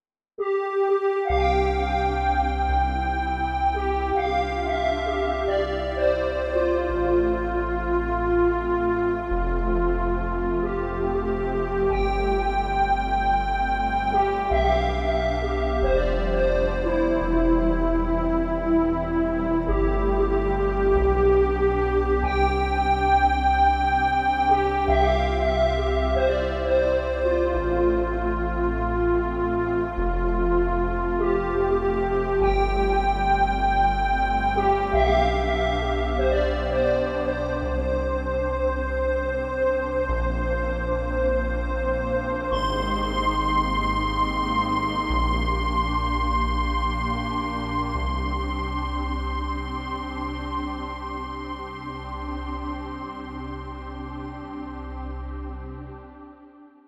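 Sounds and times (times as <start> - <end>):
synth lead: 0.4 - 56.2.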